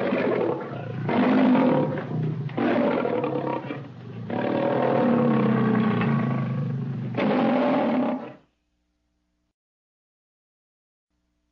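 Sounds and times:
lion roaring in deep growling bursts: 0.0 - 8.4.

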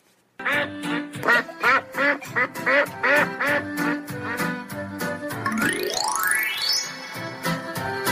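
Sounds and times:
imitated duck quacks: 0.4 - 4.5
rising whistle-like sweep: 5.5 - 8.0.

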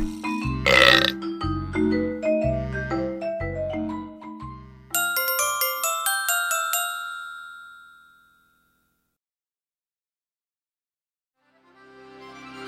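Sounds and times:
bouncy musical backing: 0.0 - 7.3
low rumbling burps: 0.7 - 1.2.

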